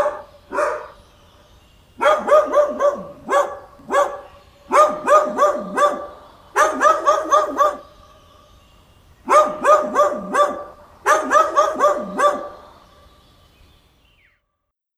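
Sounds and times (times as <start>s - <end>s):
dog barking: 0.0s - 1.0s, 2.0s - 8.0s, 9.2s - 12.6s.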